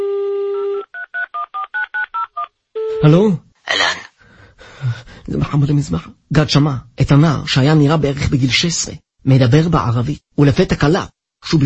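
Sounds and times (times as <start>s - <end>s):
telephone DTMF keypad tones as a number is dialed: 0.8s - 2.5s
speech: 3.0s - 3.9s, 5.3s - 11.6s.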